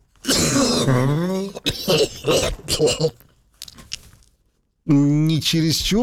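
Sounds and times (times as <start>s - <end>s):
person with a deep guttural cough: 0.2s - 3.3s
speech: 0.8s - 3.2s, 4.9s - 6.0s.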